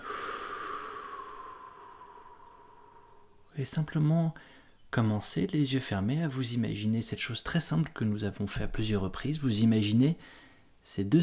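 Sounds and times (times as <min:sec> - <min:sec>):
person exhaling slowly during a relaxation exercise: 0:00.0 - 0:03.5
speech: 0:03.6 - 0:11.2.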